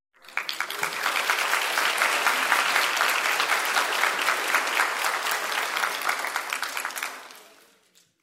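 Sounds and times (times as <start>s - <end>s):
audience clapping: 0.2s - 8.2s.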